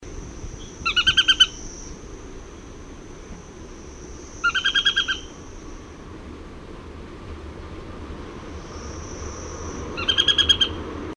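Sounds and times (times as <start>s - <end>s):
Nariño tapaculo Scytalopus vicinior calling: 0.6s - 2.0s, 4.4s - 5.6s, 8.6s - 10.9s.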